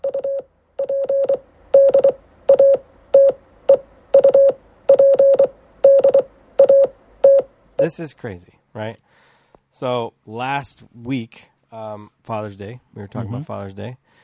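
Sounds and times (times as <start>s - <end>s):
mid-pitched electronic tone in Morse-code-style beeps: 0.0s - 7.9s
speech: 7.9s - 14.2s.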